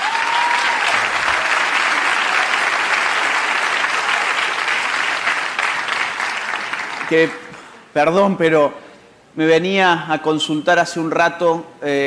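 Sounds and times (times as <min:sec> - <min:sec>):
audience applauding a sign language interpreter: 0:00.0 - 0:07.6
speech: 0:07.1 - 0:07.4, 0:08.0 - 0:08.8, 0:09.4 - 0:12.0.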